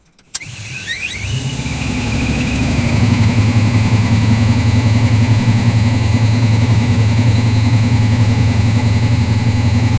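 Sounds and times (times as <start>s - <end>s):
locomotive: 0.0s - 9.9s.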